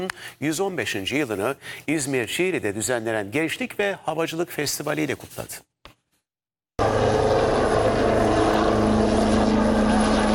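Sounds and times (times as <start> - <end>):
speech: 0.0 - 5.7
helicopter propeller thrum at an air force aviation festival in İzmir: 6.8 - 10.3.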